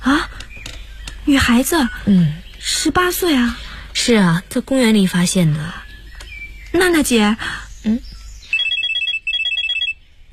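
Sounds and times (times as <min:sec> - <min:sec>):
speech: 0:01.3 - 0:05.8, 0:06.7 - 0:08.1
telephone ringing with bright electronic trilling: 0:08.5 - 0:10.0.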